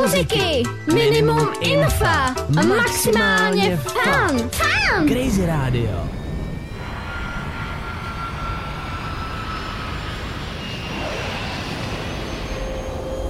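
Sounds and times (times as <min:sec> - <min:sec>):
speech: 0:00.0 - 0:06.2
high whining jet engine tones: 0:04.6 - 0:13.2
jet airplane engine roaring for takeoff: 0:05.2 - 0:13.2.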